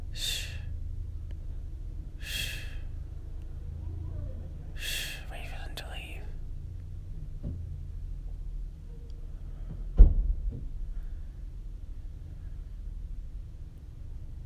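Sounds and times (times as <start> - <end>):
steady low rumble: 0.0 - 14.4
door thud of a parked car: 9.7 - 10.7.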